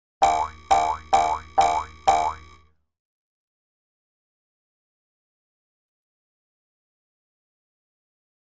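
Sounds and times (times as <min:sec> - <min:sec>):
twang sounds: 0:00.2 - 0:02.6
boing sounds: 0:00.2 - 0:02.7.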